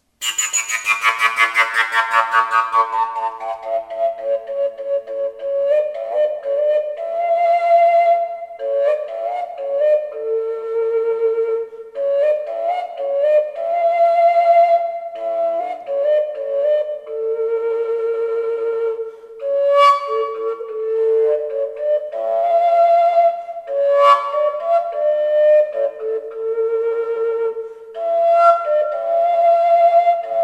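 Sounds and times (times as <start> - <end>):
Slovak folk fujara in A2: 0.0 - 30.4.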